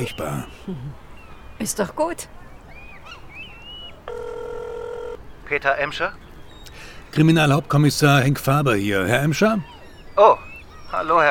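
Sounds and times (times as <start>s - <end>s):
speech: 0.0s - 2.4s, 5.5s - 6.2s, 7.1s - 11.2s
telephone ringback tone: 4.0s - 5.2s.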